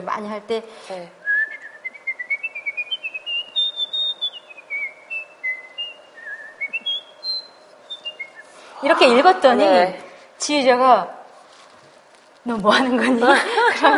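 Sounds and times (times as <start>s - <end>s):
speech: 0.1s - 1.2s, 8.8s - 11.2s, 12.4s - 13.9s
person whistling a fast ornate melismatic melody: 1.3s - 8.5s
laughter: 12.8s - 13.9s.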